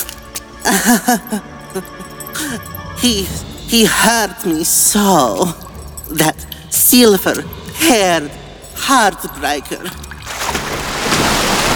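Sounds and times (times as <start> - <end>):
speech: 0.7 - 10.0
big drops of water splashing: 9.9 - 11.7.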